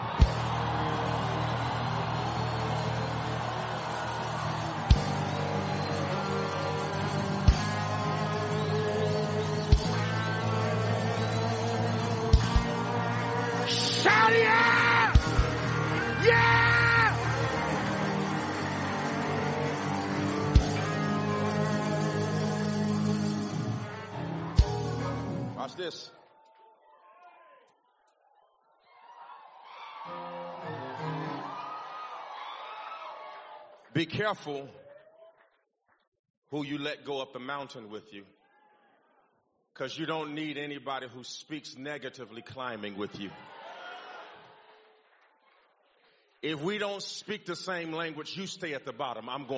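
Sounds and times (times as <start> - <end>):
large crowd yelling, whooping and screaming: 0.0 - 27.7, 28.8 - 33.8, 43.3 - 44.6
speech: 34.0 - 34.8, 36.5 - 38.4, 39.8 - 43.5, 46.4 - 49.5.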